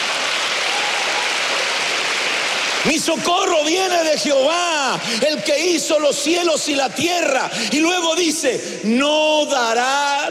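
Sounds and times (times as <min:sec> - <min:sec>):
congregation applauding at a church service: 0:00.0 - 0:05.3
speech: 0:02.8 - 0:10.3.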